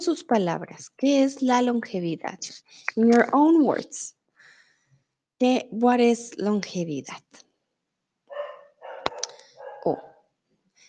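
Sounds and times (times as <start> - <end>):
speech: 0.0 - 4.2, 5.4 - 7.5, 9.8 - 10.1
small dog barking: 8.3 - 10.2.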